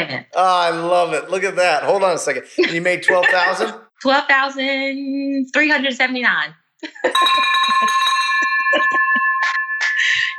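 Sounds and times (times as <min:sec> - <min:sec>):
speech: 0:00.0 - 0:08.1
laughter: 0:00.4 - 0:03.8, 0:06.8 - 0:08.0, 0:08.7 - 0:10.3
bell ringing in celebration of a closed deal: 0:07.1 - 0:10.3.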